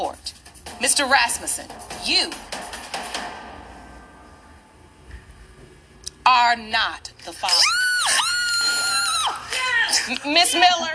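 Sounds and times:
speech: 0.0 - 2.5, 6.3 - 7.8, 10.0 - 10.9
woman screaming in celebration: 7.5 - 9.9.

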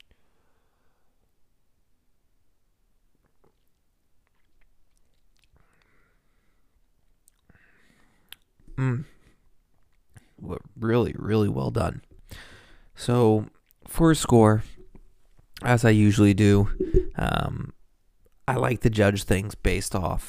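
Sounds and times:
person sipping a drink: 3.2 - 6.0
speech: 8.8 - 9.1, 11.0 - 14.7, 15.6 - 17.8, 18.5 - 20.2.

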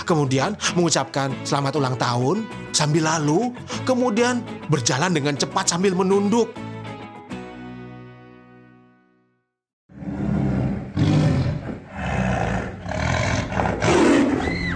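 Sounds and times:
speech: 0.1 - 6.6
tiger roaring: 9.9 - 14.6.

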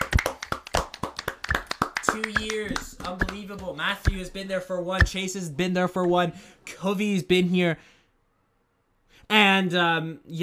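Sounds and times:
small group clapping: 0.0 - 5.2
speech: 2.1 - 8.0, 9.3 - 10.4.

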